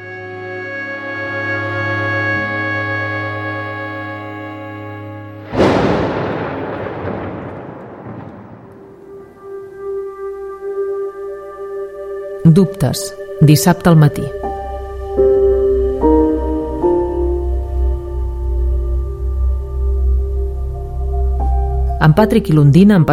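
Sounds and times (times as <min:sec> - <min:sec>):
steady sustained musical drone: 0:00.0 - 0:23.1
thunderclap rolling and rumbling during a rainstorm: 0:05.4 - 0:09.8
speech: 0:12.5 - 0:14.4, 0:22.2 - 0:23.1.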